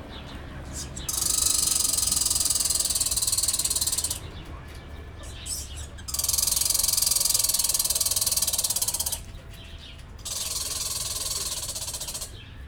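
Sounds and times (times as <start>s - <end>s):
Canadian red squirrel calling in a zoo: 0.2s - 4.4s, 5.2s - 9.4s, 10.2s - 12.5s.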